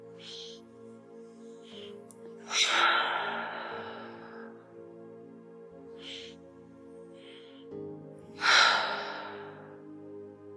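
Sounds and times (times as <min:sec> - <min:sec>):
deep breaths in through the nose and out through the mouth during a guided relaxation: 0:00.0 - 0:10.4
quiet sustained music: 0:00.0 - 0:10.5.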